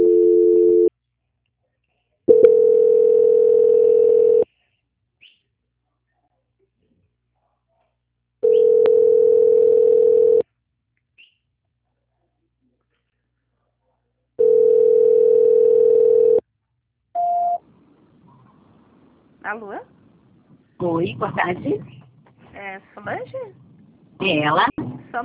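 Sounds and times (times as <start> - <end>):
telephone ringing tone on the line during a call transfer: 0.0 - 0.9, 2.3 - 4.4, 8.4 - 10.4, 14.4 - 16.4
speech: 21.1 - 22.0, 22.8 - 23.6, 24.2 - 25.2.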